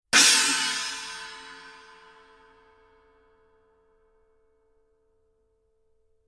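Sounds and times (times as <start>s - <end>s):
14-inch china cymbal struck on the edge: 0.2s - 2.6s.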